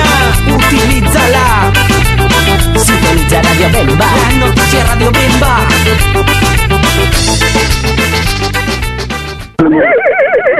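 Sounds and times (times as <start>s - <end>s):
music: 0.0s - 9.6s
horse whinnying: 9.6s - 10.5s.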